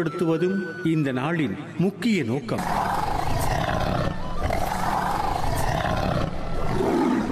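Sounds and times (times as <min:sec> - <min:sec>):
speech: 0:00.0 - 0:03.4
tiger roaring: 0:02.6 - 0:07.2.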